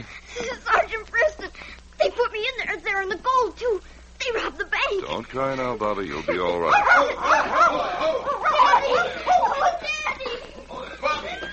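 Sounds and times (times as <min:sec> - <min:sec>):
voices and commotion: 0:00.4 - 0:11.5
speech: 0:05.1 - 0:10.0
laughter: 0:06.1 - 0:11.5
several dogs barking and yipping excitedly: 0:06.6 - 0:09.9.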